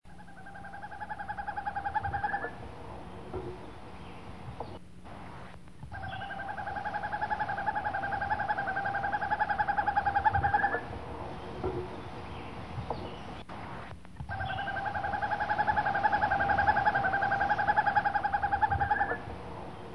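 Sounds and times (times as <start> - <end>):
Northern Hawk Owl calling in summer: 0.1 - 4.7, 5.8 - 13.4, 14.2 - 19.9.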